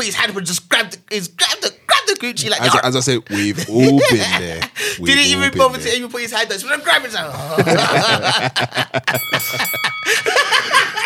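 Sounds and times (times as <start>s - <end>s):
speech: 0.0s - 11.0s
several people chatting and laughing: 2.2s - 6.0s, 6.7s - 11.0s
bell ringing: 9.2s - 11.0s.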